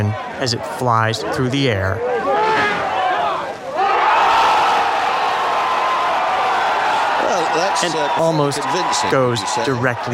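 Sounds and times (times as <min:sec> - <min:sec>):
speech: 0:00.0 - 0:02.7, 0:07.6 - 0:10.1
large outdoor golf crowd cheering and shouting: 0:02.0 - 0:10.1.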